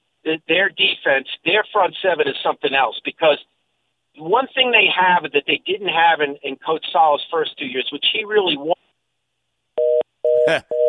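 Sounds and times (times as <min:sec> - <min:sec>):
speech: 0:00.3 - 0:03.5, 0:04.2 - 0:08.8, 0:10.4 - 0:10.8
phone electronic low-battery warning beep: 0:09.8 - 0:10.8.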